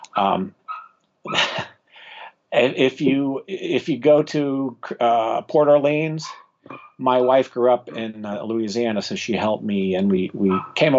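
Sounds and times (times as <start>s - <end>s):
laughter: 0.0s - 0.5s, 1.3s - 6.0s, 7.0s - 10.9s
speech: 0.2s - 0.6s, 1.2s - 1.7s, 2.5s - 10.9s
small dog giving high-pitched yaps and whiny barks: 10.5s - 10.8s.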